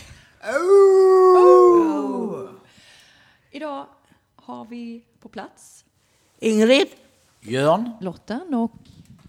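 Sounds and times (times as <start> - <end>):
human voices imitating wolves howling: 0.4 - 2.6
speech: 4.7 - 5.8, 6.4 - 9.0.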